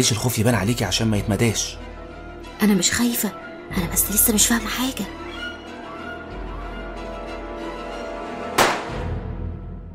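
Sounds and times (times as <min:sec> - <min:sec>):
speech: 0:00.0 - 0:01.9, 0:02.6 - 0:05.5
single gunshot from a large cannon-like gun: 0:08.6 - 0:09.1.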